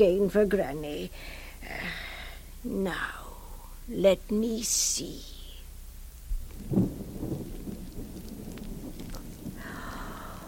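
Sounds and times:
speech: 0.0s - 2.0s, 2.6s - 3.2s, 3.9s - 5.3s, 6.6s - 7.4s
steady rain hissing: 0.9s - 10.4s
deep rolling thunder rumbling: 6.2s - 10.4s.

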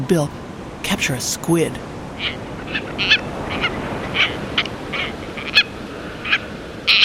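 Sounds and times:
speech: 0.0s - 4.3s
steady low rush of wind or surf: 0.0s - 7.0s
tropicbird calling: 2.0s - 7.0s.

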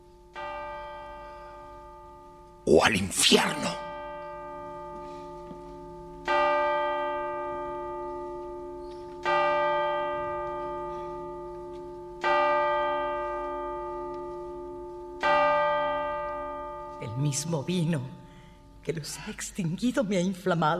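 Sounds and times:
church bell tolling: 0.2s - 18.8s
speech: 2.7s - 3.9s, 17.4s - 18.2s, 18.8s - 20.7s.

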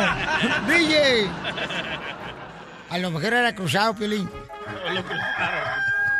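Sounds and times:
laughter: 0.0s - 3.7s, 4.6s - 6.1s
speech: 0.4s - 2.2s, 2.9s - 5.9s
rooster crowing: 4.8s - 6.1s.

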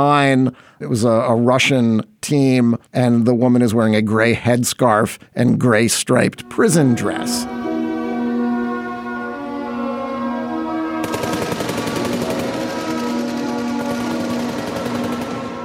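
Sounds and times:
speech: 0.0s - 7.6s
steady tonal drone: 6.4s - 15.6s
rapid automatic gunfire: 11.0s - 15.6s.

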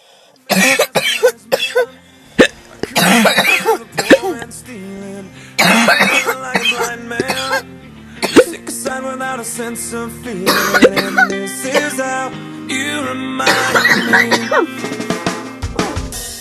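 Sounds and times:
wet throaty coughs: 0.5s - 4.4s, 5.6s - 7.6s, 8.2s - 8.6s, 10.5s - 11.9s, 13.5s - 14.7s
wet throaty hiccup-like gulps: 2.4s - 4.3s
speech: 9.6s - 15.0s.

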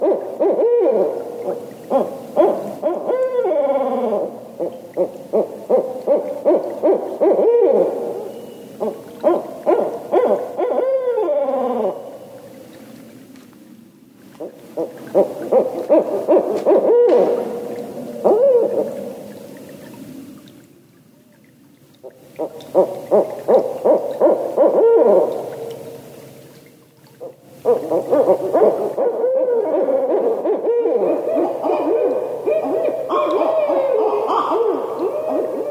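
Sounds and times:
barred owls hooting and cackling: 0.0s - 12.4s, 14.4s - 19.0s, 22.4s - 25.6s, 27.6s - 35.7s.

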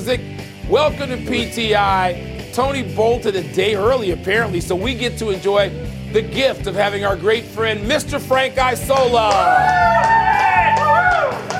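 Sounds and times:
speech: 0.0s - 10.3s
group of people cheering and whooping: 9.3s - 11.5s.

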